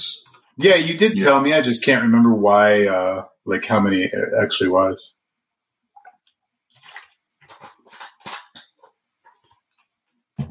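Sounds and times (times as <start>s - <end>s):
speech: 0.6s - 5.2s
person drinking water: 5.9s - 10.0s.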